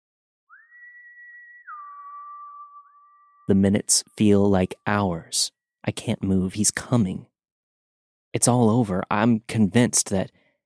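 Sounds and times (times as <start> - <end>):
man whistling a two-note call on a street: 0.5 - 3.5
speech: 3.5 - 7.3, 8.4 - 10.4.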